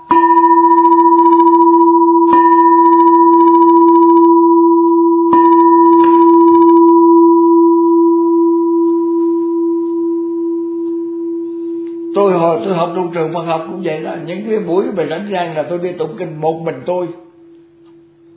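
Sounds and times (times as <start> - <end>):
Buddhist temple bell from Huế Vietnam struck: 0.0 - 14.7
speech: 12.7 - 17.2.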